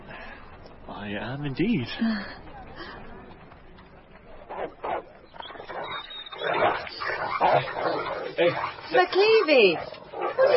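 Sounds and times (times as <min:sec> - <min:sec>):
speech: 0:01.0 - 0:03.0, 0:07.6 - 0:10.5
dogs barking: 0:04.5 - 0:10.5.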